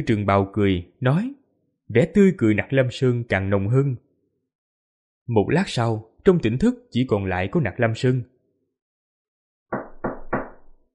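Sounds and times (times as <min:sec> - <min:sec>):
speech: 0:00.0 - 0:04.0, 0:05.3 - 0:08.3
knocking on a door: 0:09.7 - 0:10.8.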